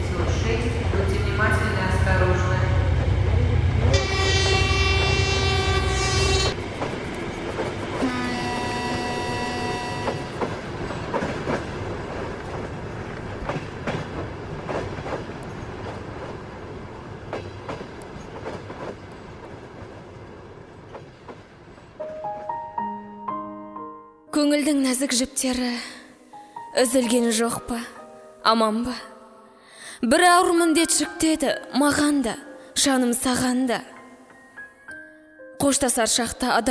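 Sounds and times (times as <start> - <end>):
train rolling rumble: 0.0 - 22.5
train horn blasts: 3.8 - 6.6, 8.0 - 10.5
speech: 24.6 - 26.0, 26.8 - 29.1, 30.0 - 33.9, 35.6 - 36.6.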